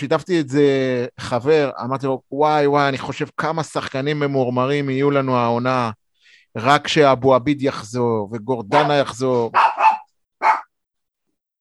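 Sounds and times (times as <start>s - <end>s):
speech: 0.0s - 9.6s
dog barking: 8.7s - 10.7s.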